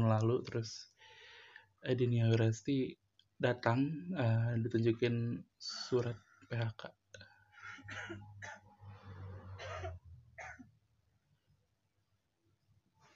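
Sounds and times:
speech: 0:00.0 - 0:00.9, 0:01.8 - 0:07.3, 0:07.9 - 0:08.6
person coughing: 0:07.7 - 0:08.7, 0:09.6 - 0:10.7.

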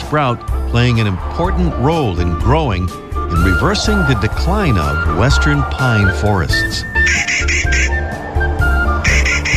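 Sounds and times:
speech: 0:00.1 - 0:07.3
Clark's Nutcracker Nucifraga columbiana giving harsh grating squawks: 0:07.0 - 0:08.0, 0:09.0 - 0:09.5.

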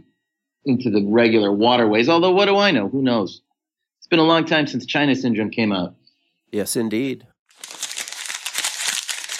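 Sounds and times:
speech: 0:00.6 - 0:07.3
paper being crumpled: 0:07.5 - 0:09.3.

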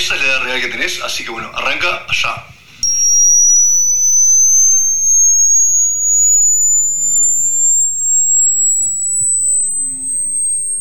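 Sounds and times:
speech: 0:00.1 - 0:02.6
rising-frequency hearing test tone: 0:02.8 - 0:10.7.

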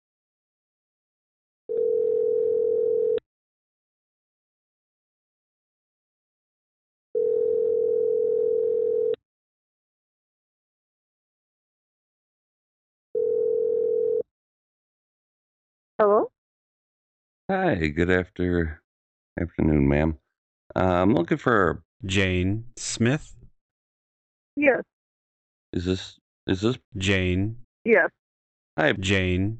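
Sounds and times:
telephone line tone while dialing a call: 0:01.7 - 0:03.2, 0:07.2 - 0:09.2, 0:13.2 - 0:14.2
speech: 0:17.5 - 0:18.8, 0:19.4 - 0:23.4, 0:24.6 - 0:24.9, 0:25.7 - 0:28.2, 0:28.8 - 0:29.5.

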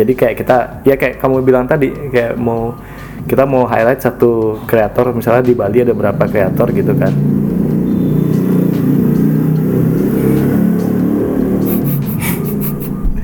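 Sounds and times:
speech: 0:00.0 - 0:07.6
big motorbike engines revving outside: 0:04.0 - 0:13.2.

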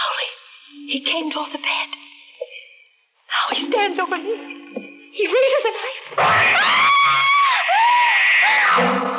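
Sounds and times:
speech: 0:00.9 - 0:02.0, 0:03.5 - 0:06.6
woman screaming in terror: 0:06.5 - 0:08.8.

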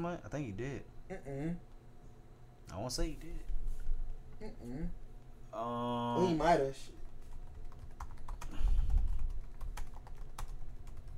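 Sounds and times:
speech: 0:00.0 - 0:01.7, 0:02.7 - 0:03.5, 0:04.4 - 0:07.0
rapid forceful keystrokes on a keyboard: 0:07.2 - 0:11.1.

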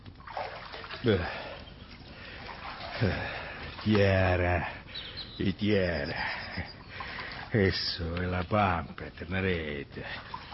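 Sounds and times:
water sloshing in a bathtub: 0:00.0 - 0:10.5
speech: 0:01.0 - 0:01.4, 0:03.0 - 0:06.7, 0:07.5 - 0:10.3.

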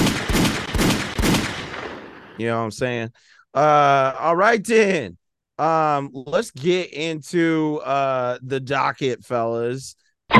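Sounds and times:
gunshot sound effects: 0:00.0 - 0:02.4
speech: 0:02.4 - 0:10.3.

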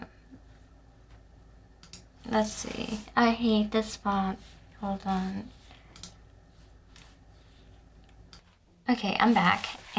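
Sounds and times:
soft hum: 0:00.0 - 0:09.9
computer mouse clicks: 0:01.8 - 0:02.1, 0:05.9 - 0:06.2
speech: 0:02.3 - 0:05.6, 0:08.9 - 0:09.9.

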